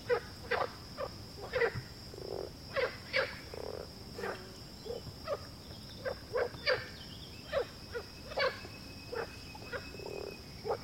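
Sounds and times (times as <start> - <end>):
frog croaking in low knocking notes: 0.0 - 5.4, 6.0 - 10.8.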